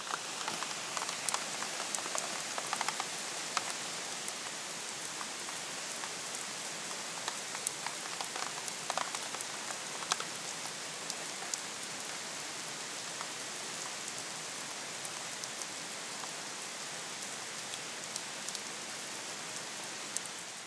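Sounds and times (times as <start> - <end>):
torrential downpour of heavy rain: 0.0 - 20.6.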